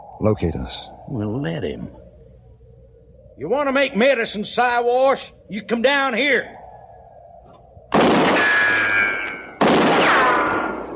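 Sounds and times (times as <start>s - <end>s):
speech: 0.2s - 2.0s, 3.4s - 6.6s
gunshots fired from up in a tree with whining ring: 7.9s - 10.9s.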